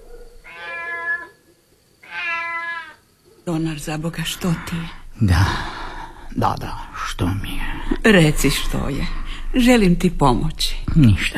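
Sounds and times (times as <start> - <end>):
cat meowing: 0.4 - 1.4, 2.0 - 3.0
speech: 3.4 - 11.3.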